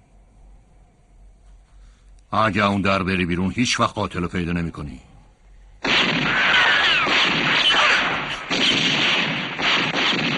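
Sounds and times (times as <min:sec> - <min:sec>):
speech: 0:02.3 - 0:05.1
loud sustained barrage of gunfire: 0:05.8 - 0:10.3.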